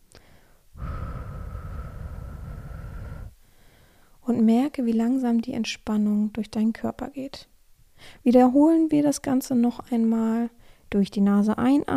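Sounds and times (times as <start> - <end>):
slow controlled exhale through the mouth: 0.2 - 4.2
speech: 4.3 - 11.9.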